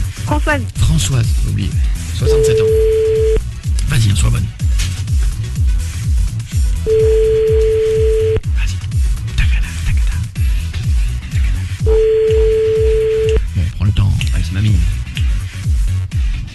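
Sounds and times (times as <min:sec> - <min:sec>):
loud rhythmic music: 0:00.0 - 0:16.5
speech: 0:00.3 - 0:03.3, 0:03.9 - 0:04.9, 0:06.8 - 0:07.4
telephone ringback tone while calling a grandmother: 0:02.2 - 0:03.4, 0:06.9 - 0:08.4, 0:11.9 - 0:13.4.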